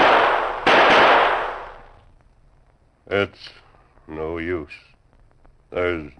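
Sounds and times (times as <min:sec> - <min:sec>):
gunshots from a man firing his last bullets: 0:00.0 - 0:02.0
speech: 0:03.1 - 0:04.9, 0:05.7 - 0:06.1.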